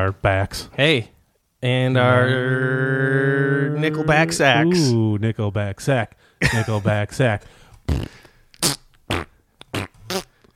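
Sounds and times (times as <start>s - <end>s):
speech: 0.0s - 8.8s
short sputtering farts: 7.9s - 10.4s.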